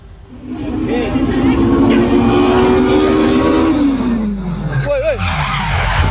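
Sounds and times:
drag race car engine during a drag race in North Sulawesi Indonesia: 0.0 - 6.0
drag race car tire screech as the car slides out of control: 0.0 - 6.0.

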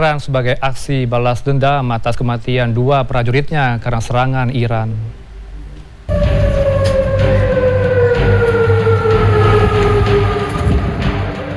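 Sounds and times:
speech: 0.0 - 5.2
air raid warning siren wailing across city: 6.1 - 11.5.

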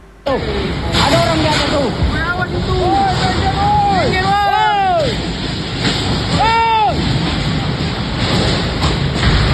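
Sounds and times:
whirlwind winds tearing off building roofs: 0.0 - 9.5
speech: 0.3 - 0.7
people shouting excitedly: 2.2 - 5.3, 6.3 - 7.1.

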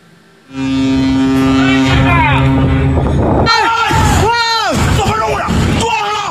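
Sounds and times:
ship's horn blaring: 0.2 - 4.8
frantic shouting voices during a cargo ship collision with a fishing boat: 3.4 - 6.3.

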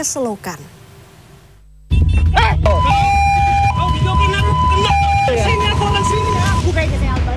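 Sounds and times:
speech: 0.0 - 0.8
rumbling traffic noise: 0.0 - 7.3
two-tone hi-lo ambulance siren wailing: 2.4 - 6.6.

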